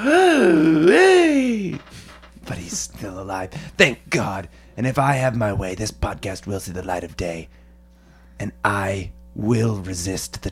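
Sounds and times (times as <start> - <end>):
person giving a strained gasping moan: 0.0 - 1.8
speech: 3.1 - 7.6, 8.4 - 10.4.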